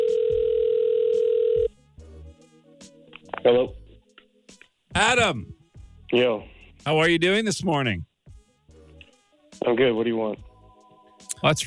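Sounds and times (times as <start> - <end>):
electronic telephone ring tone through the line: 0.0 - 1.7
speech: 3.4 - 3.8, 5.0 - 8.1, 9.6 - 10.5, 11.4 - 11.6.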